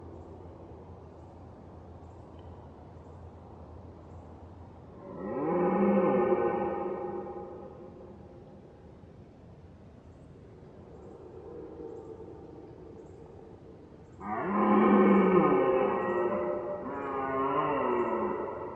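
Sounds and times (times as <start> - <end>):
red deer roaring: 5.0 - 8.0, 14.2 - 18.7.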